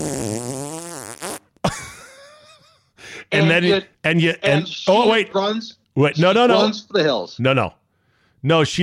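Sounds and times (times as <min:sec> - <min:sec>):
long buzzing fart noise made with the voice: 0:00.0 - 0:01.6
speech: 0:03.4 - 0:07.8, 0:08.4 - 0:08.8.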